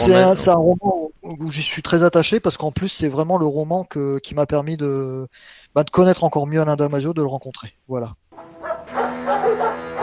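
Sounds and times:
speech: 0:00.0 - 0:08.2
dogs barking: 0:08.6 - 0:10.0.

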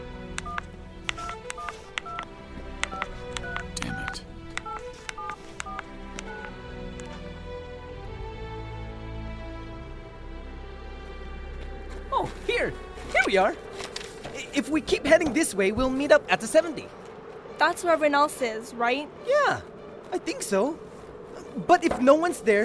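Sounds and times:
low rumbling background: 0:00.0 - 0:22.6
telephone keypad dialing tones: 0:00.4 - 0:06.6
speech: 0:12.6 - 0:13.7, 0:14.6 - 0:17.0, 0:17.6 - 0:20.9, 0:21.6 - 0:22.6.

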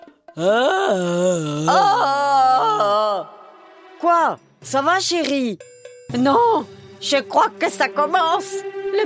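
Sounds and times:
speech: 0:00.4 - 0:02.2, 0:04.0 - 0:09.0
person imitating a red deer stag's bellow: 0:00.4 - 0:03.3.

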